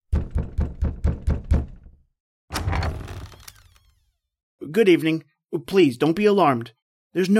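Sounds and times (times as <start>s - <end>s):
heavy knocking on a massive oaken door: 0.1s - 2.0s
speech: 4.7s - 7.3s.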